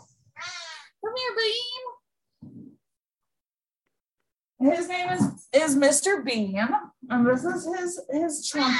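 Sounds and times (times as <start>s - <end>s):
big male cat meowing: 0.3s - 0.9s
speech: 4.7s - 8.7s.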